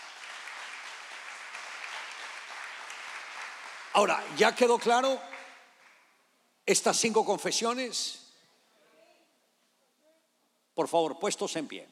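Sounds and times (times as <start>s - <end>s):
audience applauding: 0.0s - 6.1s
speech: 4.0s - 5.3s, 6.7s - 8.2s, 10.8s - 11.9s.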